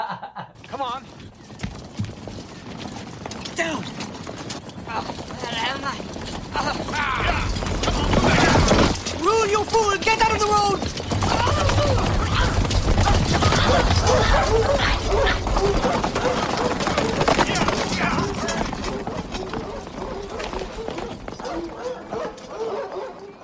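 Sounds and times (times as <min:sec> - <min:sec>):
rhythmic clatter of galloping horse hooves: 0:00.5 - 0:23.4
speech: 0:00.8 - 0:01.3, 0:03.6 - 0:04.0, 0:04.9 - 0:12.1, 0:13.7 - 0:16.4
dogs barking repeatedly: 0:10.8 - 0:23.4.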